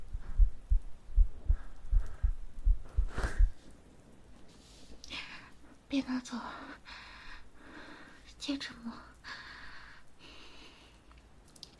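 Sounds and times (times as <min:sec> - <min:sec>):
heartbeat thumping in a person's chest: 0:00.0 - 0:03.6
speech: 0:05.9 - 0:06.9, 0:08.5 - 0:09.1.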